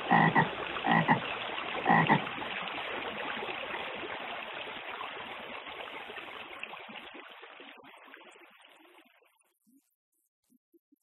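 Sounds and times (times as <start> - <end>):
frogs croaking: 0.0 - 1.2, 1.8 - 2.2
flowing stream water: 0.0 - 9.3.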